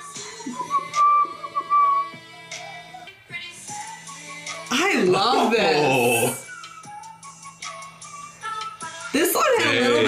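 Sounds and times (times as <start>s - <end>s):
bright melodic whistled line in a song: 0.0s - 4.7s, 6.0s - 9.2s
song's backing music: 0.0s - 10.0s
speech: 0.4s - 0.8s, 4.7s - 6.0s.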